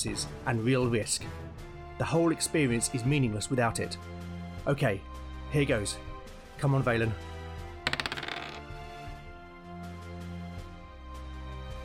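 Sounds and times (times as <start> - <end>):
speech: 0.0 - 7.3
dice tumbling across a hard surface: 7.9 - 8.6.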